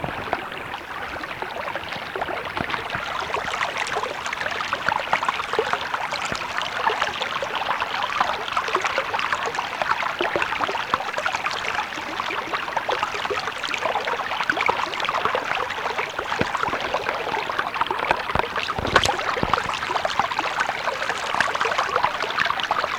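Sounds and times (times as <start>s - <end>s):
streamy water: 0.0s - 22.9s.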